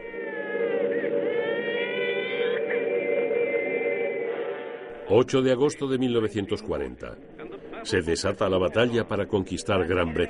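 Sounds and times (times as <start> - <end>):
air raid siren wailing: 0.0 - 5.1
speech: 5.1 - 10.2.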